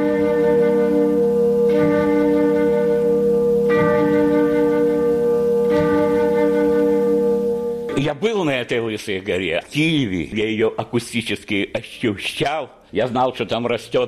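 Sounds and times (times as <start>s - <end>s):
resonant church clock bell tones chiming a stepwise sequence: 0.0s - 8.5s
speech: 8.1s - 14.0s.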